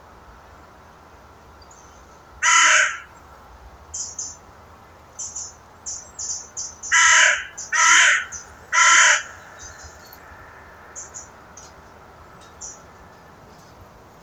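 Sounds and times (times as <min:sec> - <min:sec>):
Carrion crow Corvus corone cawing: 0:02.4 - 0:03.1, 0:06.9 - 0:11.2
bird giving thin short high chirps: 0:04.0 - 0:04.4, 0:05.2 - 0:12.9.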